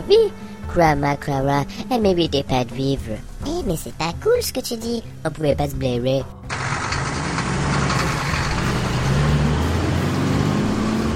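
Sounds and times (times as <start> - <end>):
speech: 0.1 - 6.4
heavy truck engine rumbling: 6.4 - 11.1.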